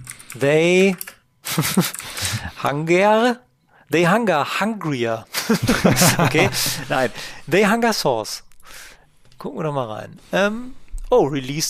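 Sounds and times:
clattering keystrokes on a computer keyboard: 0.0s - 2.2s
speech: 0.4s - 1.0s, 1.6s - 8.4s, 9.4s - 11.6s
laughter: 1.5s - 2.5s, 5.3s - 7.3s.

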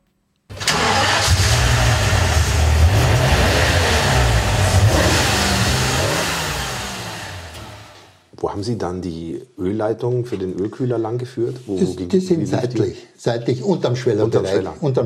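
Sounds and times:
BMW M8 E31 V12 car engine cranking, starting and running: 0.5s - 8.2s
speech: 8.6s - 15.0s.

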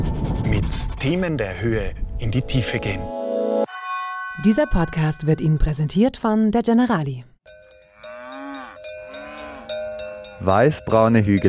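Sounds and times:
speech: 0.6s - 3.2s, 4.4s - 7.6s, 10.4s - 11.4s
cows mooing on alpine pasture: 3.7s - 5.8s, 7.8s - 10.4s
faint bell-like clinks: 7.5s - 11.4s.

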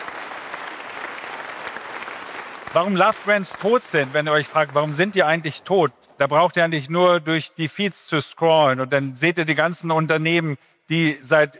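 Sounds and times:
audience applause at a live talk: 0.0s - 6.8s
speech: 2.8s - 11.5s.

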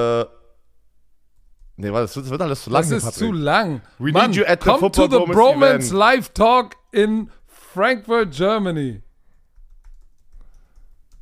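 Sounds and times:
speech: 0.0s - 0.4s, 1.8s - 9.1s
typing on a computer keyboard: 9.3s - 11.2s.

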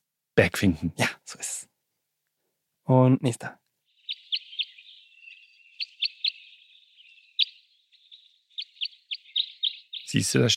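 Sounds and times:
speech: 0.4s - 1.7s, 2.9s - 3.6s, 10.1s - 10.5s
crossbill jip flight calls: 3.9s - 10.3s
thin high continuous twittering: 3.9s - 10.5s.

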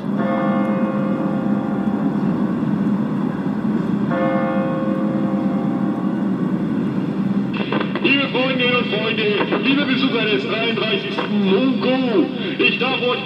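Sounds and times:
great church bell tolling the hour: 0.0s - 7.7s
rumble of traffic or wind: 0.0s - 13.2s
speech: 9.2s - 13.2s.

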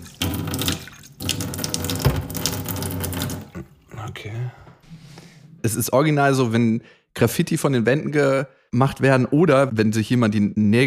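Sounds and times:
water pouring into a glass: 0.0s - 3.6s
speech: 5.7s - 10.8s.

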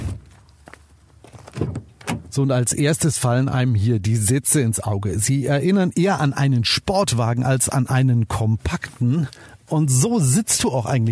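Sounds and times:
Skala car door solid thunks: 1.5s - 2.3s
Skala car door light click: 1.6s - 2.3s
speech: 2.4s - 11.1s.

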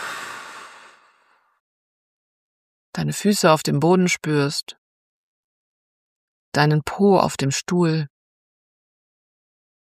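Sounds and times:
deep breath during a mindfulness pause: 0.0s - 1.6s
speech: 3.0s - 4.8s, 6.6s - 8.1s.

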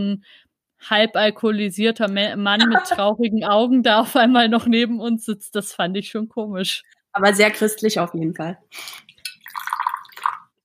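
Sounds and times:
speech: 0.0s - 9.1s
laughter: 2.6s - 3.0s
tea being poured into a cup: 9.2s - 10.6s.

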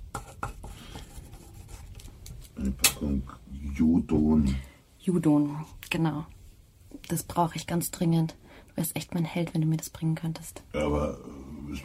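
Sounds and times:
pen scratching on paper writing a note by hand: 0.2s - 2.0s
speech: 2.6s - 6.4s, 7.0s - 11.8s.

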